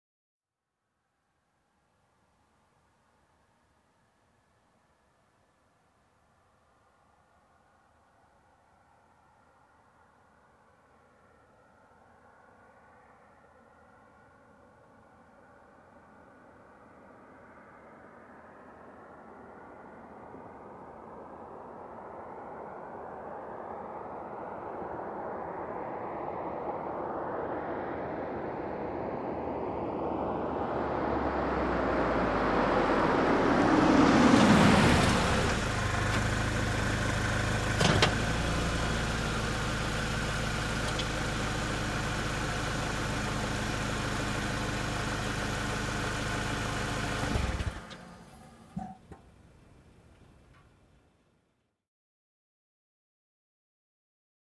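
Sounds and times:
car approaching fast: 0:06.8 - 0:50.4
car parking: 0:32.0 - 0:50.9.

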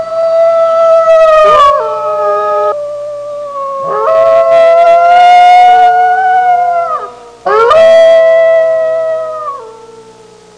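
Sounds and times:
wolf pack howling: 0:00.0 - 0:10.0.

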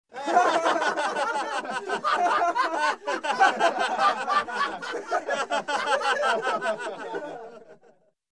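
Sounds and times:
group of people laughing hilariously: 0:00.1 - 0:08.1.

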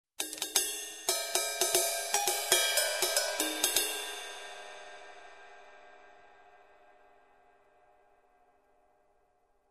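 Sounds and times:
various cymbals: 0:01.1 - 0:07.7.

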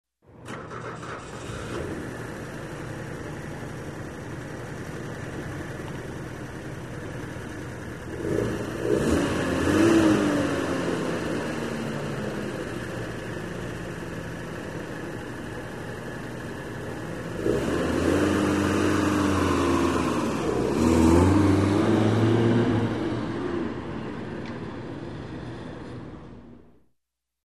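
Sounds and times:
truck engine ignition: 0:00.3 - 0:26.2.

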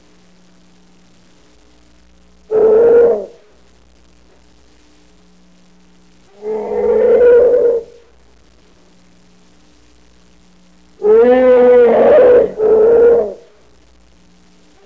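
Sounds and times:
long generic growling: 0:06.4 - 0:08.0, 0:11.0 - 0:13.4.

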